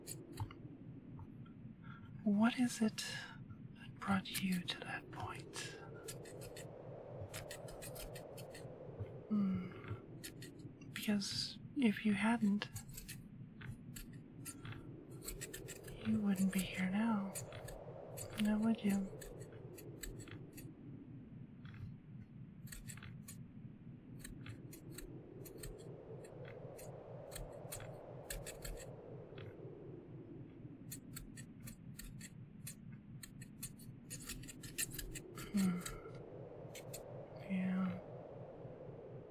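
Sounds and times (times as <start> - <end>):
steady low droning hum: 0.0 - 39.2
speech: 2.3 - 3.4, 4.0 - 6.8, 11.1 - 12.8, 16.1 - 17.5, 18.4 - 19.2
scissors cutting hair: 5.5 - 6.7, 12.6 - 13.2, 13.9 - 20.6, 22.6 - 23.4, 24.2 - 25.9, 26.8 - 28.9, 30.9 - 36.0.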